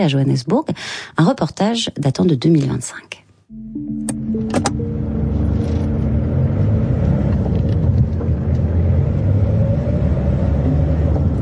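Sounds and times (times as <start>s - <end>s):
speech: 0.0s - 3.2s
brief clicks and tones: 3.5s - 7.7s
car engine and tyres rumbling on a road in South Africa: 4.6s - 11.4s.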